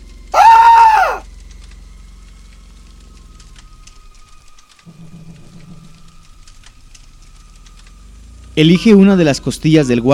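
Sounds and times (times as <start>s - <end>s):
man screaming in pain: 0.4s - 1.2s
speech: 8.6s - 10.1s.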